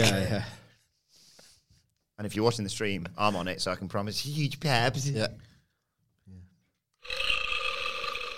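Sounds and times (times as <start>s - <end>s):
speech: 2.2s - 5.5s
guttural burp: 7.0s - 8.3s.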